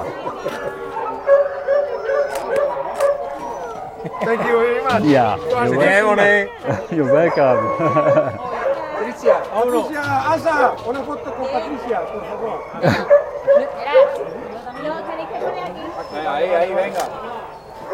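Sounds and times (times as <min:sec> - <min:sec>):
laughter: 0:00.0 - 0:01.2, 0:03.4 - 0:08.9, 0:12.2 - 0:13.9
dogs barking and yipping: 0:00.0 - 0:17.9
speech: 0:04.3 - 0:08.5, 0:09.6 - 0:13.2, 0:15.4 - 0:17.4.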